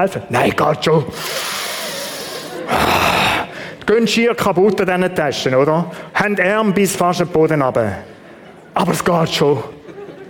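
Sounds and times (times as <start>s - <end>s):
speech: 0.0s - 1.7s, 2.7s - 3.0s, 3.9s - 8.1s, 8.8s - 9.8s
person imitating heavy panting of people carrying bags upstairs: 1.1s - 3.8s.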